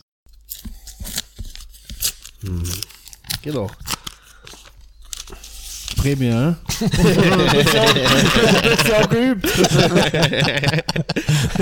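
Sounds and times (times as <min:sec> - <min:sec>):
paper envelope being torn open: 0:00.3 - 0:06.2
speech: 0:02.4 - 0:03.9, 0:06.0 - 0:11.5
laughter: 0:06.7 - 0:11.5.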